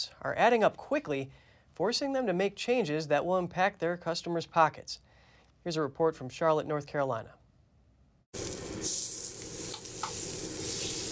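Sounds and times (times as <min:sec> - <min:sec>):
speech: 0:00.0 - 0:07.4
food frying on a hot griddle at a food truck in Charlotte North Carolina: 0:08.4 - 0:11.1.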